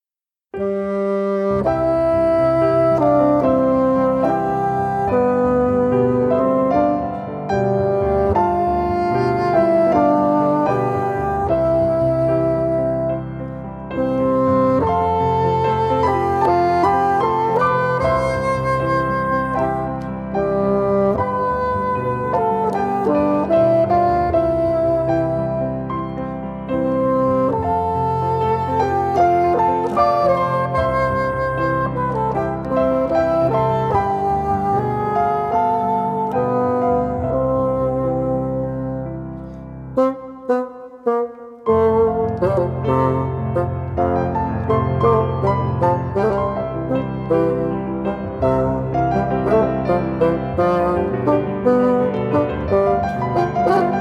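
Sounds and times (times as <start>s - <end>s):
piano: 0.0s - 53.9s
bassoon: 0.5s - 53.9s.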